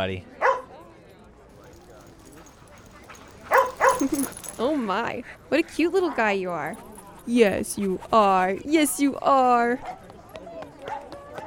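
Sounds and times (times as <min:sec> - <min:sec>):
speech: 0:00.0 - 0:00.4, 0:04.0 - 0:10.0
faint indistinct voices outdoors: 0:00.0 - 0:11.4
dog barking at a dog park: 0:00.4 - 0:00.7, 0:03.5 - 0:04.3.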